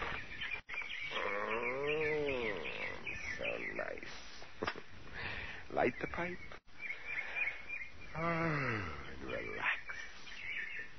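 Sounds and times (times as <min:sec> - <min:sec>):
birds chirping outdoors at twilight: 0:00.0 - 0:10.9
speech: 0:05.8 - 0:06.6, 0:08.2 - 0:09.8.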